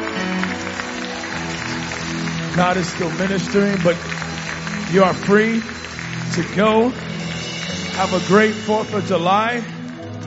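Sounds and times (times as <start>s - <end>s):
large audience clapping: 0.0s - 10.2s
speech: 2.6s - 4.2s, 4.9s - 7.1s, 8.0s - 9.7s.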